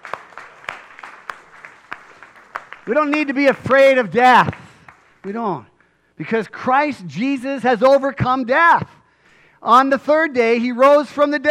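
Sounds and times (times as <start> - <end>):
scattered clapping from a church congregation during a sermon: 0.0 - 5.5
speech: 2.9 - 4.6, 5.2 - 9.0, 9.6 - 11.4.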